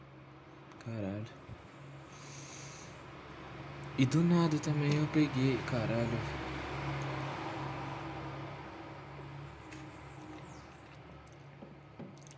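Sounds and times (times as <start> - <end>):
speech: 0.8 - 1.6, 4.0 - 6.4
truck rumbling past outside: 1.6 - 12.0.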